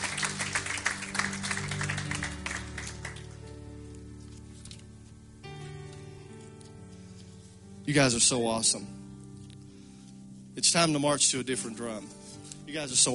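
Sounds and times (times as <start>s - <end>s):
audience applauding: 0.0s - 3.5s
speech: 7.9s - 9.0s, 10.6s - 13.1s.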